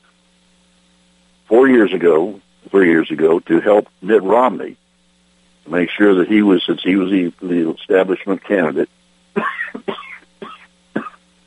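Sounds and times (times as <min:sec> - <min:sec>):
speech: 0:01.6 - 0:04.8, 0:05.6 - 0:10.0
person coughing from pollen in the air: 0:09.4 - 0:11.2
throat clearing from pollen in the air: 0:09.4 - 0:11.2.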